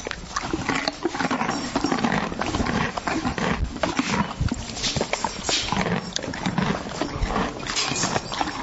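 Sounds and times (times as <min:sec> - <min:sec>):
horse eating carrots: 0:00.0 - 0:08.6.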